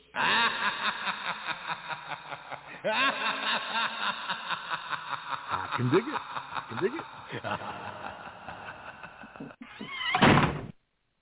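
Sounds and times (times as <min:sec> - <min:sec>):
laughter: 0:00.0 - 0:10.0
speech: 0:00.2 - 0:01.4, 0:02.8 - 0:04.0, 0:05.8 - 0:08.9
door creaking: 0:09.6 - 0:10.8
door bumping into something with a dull thud: 0:10.2 - 0:10.7.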